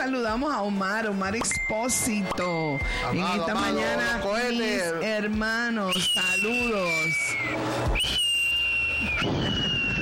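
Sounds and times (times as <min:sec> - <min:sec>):
speech: 0:00.0 - 0:08.3
firework rocket shrieking with a long high whistle: 0:05.9 - 0:10.0.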